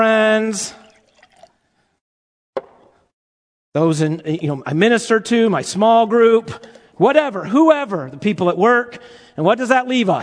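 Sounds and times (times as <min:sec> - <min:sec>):
speech: 0:00.0 - 0:00.8, 0:03.7 - 0:10.2
water pouring from a cup: 0:00.8 - 0:01.7.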